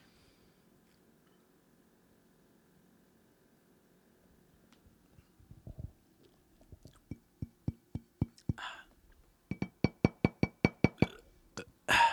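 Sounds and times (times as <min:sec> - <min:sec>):
empty glass bottle clinking: 0:09.5 - 0:11.2.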